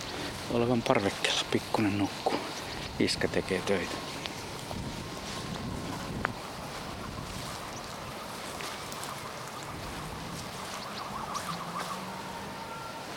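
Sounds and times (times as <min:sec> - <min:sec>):
outdoor wind: 0:00.0 - 0:13.1
speech: 0:00.5 - 0:04.2
ambulance siren wailing: 0:06.0 - 0:13.1.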